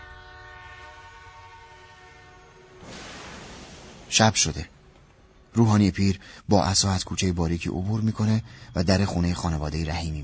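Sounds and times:
passing train sounding its horn: 0.0s - 3.2s
speech: 4.1s - 4.8s, 5.6s - 10.2s.

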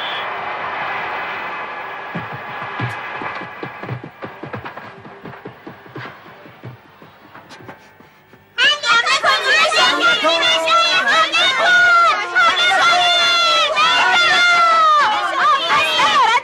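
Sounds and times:
children cheering and shouting for a team: 0.0s - 4.8s, 8.6s - 16.3s.

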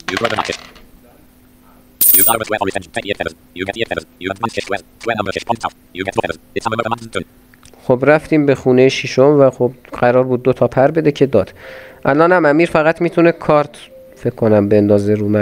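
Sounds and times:
faint steady hum: 0.0s - 14.4s
dice clattering as they are rolled during a board game: 0.1s - 0.8s, 2.0s - 2.4s
speech: 0.1s - 0.8s, 2.3s - 15.4s.

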